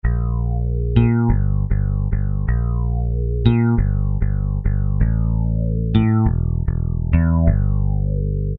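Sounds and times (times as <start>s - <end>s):
synth bass from a Kurzweil K2000: 0.0s - 8.5s.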